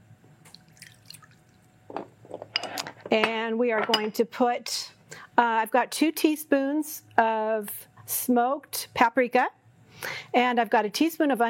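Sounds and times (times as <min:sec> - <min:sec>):
water poured into homemade sauce mixture with maple syrup: 0:00.5 - 0:01.6
speech: 0:03.1 - 0:04.8, 0:05.4 - 0:11.4.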